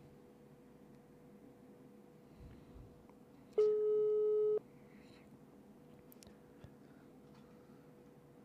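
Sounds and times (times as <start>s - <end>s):
telephone tone on a call while waiting for an answer: 3.6s - 4.6s.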